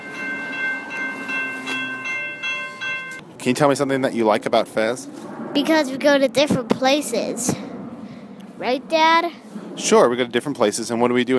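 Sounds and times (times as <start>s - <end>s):
bells ringing: 0.0s - 3.2s
speech: 3.4s - 7.7s, 8.6s - 11.3s.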